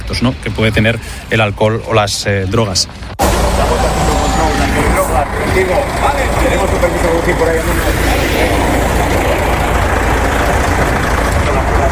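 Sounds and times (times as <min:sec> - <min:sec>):
speech: 0:00.1 - 0:04.6, 0:05.2 - 0:09.2
dense traffic noise on a busy road: 0:02.9 - 0:11.8
heavy truck engine rumbling: 0:03.0 - 0:11.8.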